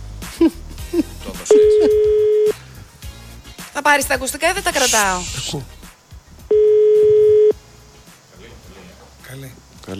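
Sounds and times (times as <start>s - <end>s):
long steady telephone ringback tone: 1.5s - 2.6s, 6.5s - 7.6s
speech: 3.9s - 5.8s
phone keypad beeps: 6.5s - 7.5s.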